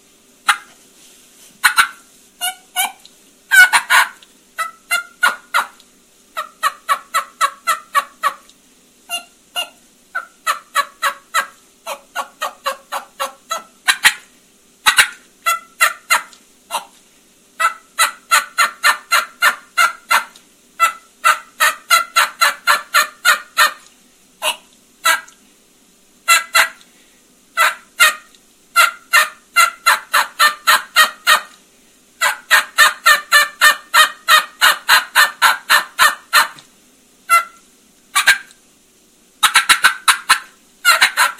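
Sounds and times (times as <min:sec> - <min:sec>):
turkey call imitating an excited hen with rapid yelps and clucks: 0:00.5 - 0:00.7, 0:01.6 - 0:05.8, 0:06.4 - 0:08.5, 0:09.1 - 0:17.0, 0:17.6 - 0:25.4, 0:26.2 - 0:26.8, 0:27.6 - 0:31.6, 0:32.2 - 0:36.6, 0:37.3 - 0:38.6, 0:39.4 - 0:41.3.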